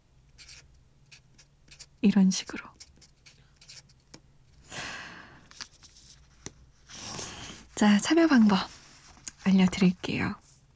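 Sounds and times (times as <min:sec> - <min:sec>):
pen scratching on paper while writing: 0:00.4 - 0:03.9
speech: 0:02.0 - 0:02.8, 0:07.8 - 0:08.8, 0:09.5 - 0:10.4.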